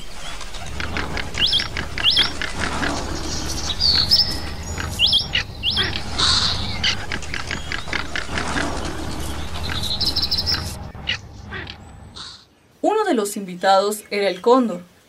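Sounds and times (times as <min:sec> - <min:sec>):
steady rustling background: 0:00.0 - 0:12.4
several birds chirping and calling: 0:00.0 - 0:12.5
speech: 0:13.4 - 0:14.9.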